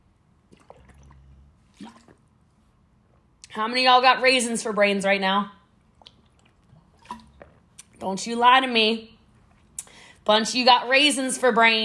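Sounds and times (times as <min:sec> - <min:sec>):
low steady hum: 0:00.0 - 0:11.8
water being poured or sipped, gurgling and slurping: 0:00.4 - 0:02.4, 0:05.8 - 0:08.1
speech: 0:03.6 - 0:05.6, 0:08.0 - 0:09.1, 0:10.3 - 0:11.8.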